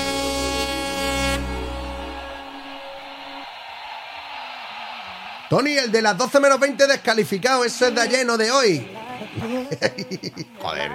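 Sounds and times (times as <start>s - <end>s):
sustained horn blast with rich harmonics: 0.0s - 3.8s
speech: 5.5s - 10.9s
laughter: 8.9s - 10.9s.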